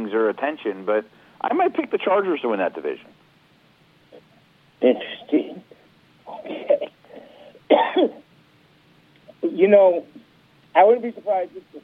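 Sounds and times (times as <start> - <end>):
speech: 0.1 - 3.2, 4.8 - 5.7, 7.7 - 8.2, 9.4 - 10.2, 10.8 - 11.8
person coughing: 6.3 - 8.2.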